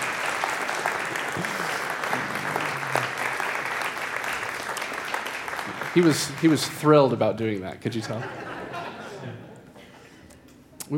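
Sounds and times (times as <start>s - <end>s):
dense applause from a sizable audience: 0.0s - 7.2s
laughter: 1.2s - 3.5s, 7.9s - 10.2s
speech: 6.0s - 8.5s.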